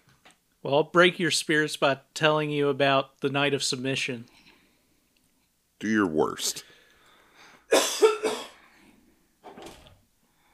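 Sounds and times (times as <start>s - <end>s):
speech: 0.6s - 4.4s, 5.8s - 6.7s
harsh hacking coughs: 7.7s - 8.6s.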